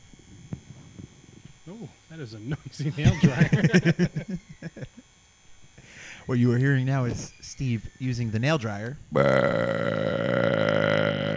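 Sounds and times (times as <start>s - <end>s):
speech: 1.7s - 4.9s, 6.3s - 10.6s
laughter: 2.5s - 5.0s
loud drawn-out burp from a man: 9.1s - 11.3s.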